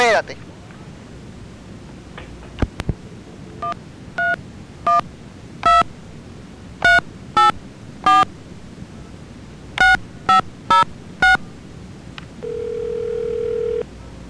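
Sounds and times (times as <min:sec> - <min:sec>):
speech: 0:00.2 - 0:00.6
telephone keypad dialing tones: 0:05.6 - 0:05.9, 0:06.8 - 0:08.2, 0:09.8 - 0:11.4, 0:12.4 - 0:13.8
telephone ringback or line tone: 0:09.8 - 0:11.4, 0:12.4 - 0:13.8.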